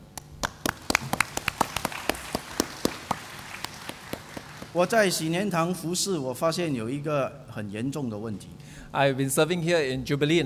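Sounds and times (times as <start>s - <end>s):
small church audience applauding: 0.0s - 4.8s
speech: 4.8s - 10.4s.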